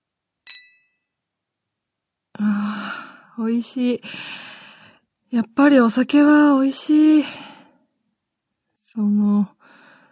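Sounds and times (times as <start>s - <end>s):
glasses clinking in a toast: 0.4s - 1.0s
speech: 3.4s - 4.5s, 5.3s - 7.5s, 9.0s - 9.6s.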